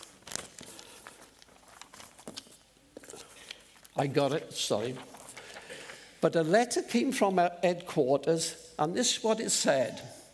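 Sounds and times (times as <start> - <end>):
paper rustling and crinkling while being shuffled: 0.0 - 6.0
speech: 4.0 - 5.1, 6.2 - 10.2.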